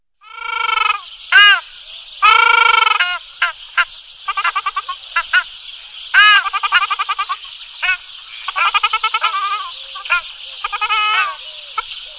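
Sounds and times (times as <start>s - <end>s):
ruddy shelduck calling: 0.3s - 12.0s.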